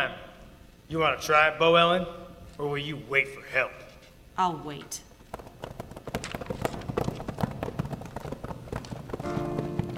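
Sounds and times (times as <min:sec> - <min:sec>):
speech: 0:00.9 - 0:05.1
several horses' hooves clattering on a hard street: 0:05.2 - 0:09.9.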